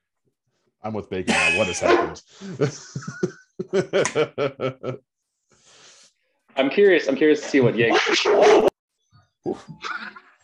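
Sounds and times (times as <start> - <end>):
speech: 0.8 - 5.1, 6.6 - 8.7, 9.4 - 10.2
dog barking angrily: 1.8 - 2.2
laughter: 2.3 - 5.0.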